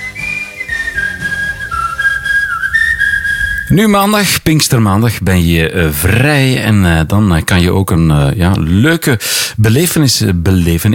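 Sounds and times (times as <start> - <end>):
full band backing: 0.0 - 2.8
clear bright whistled melody: 0.0 - 3.8
speech: 3.7 - 10.9.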